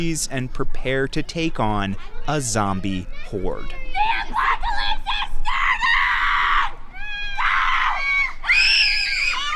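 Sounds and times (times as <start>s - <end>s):
speech: 0.0s - 5.1s
woman screaming high-pitched in a wooded park: 4.0s - 9.5s.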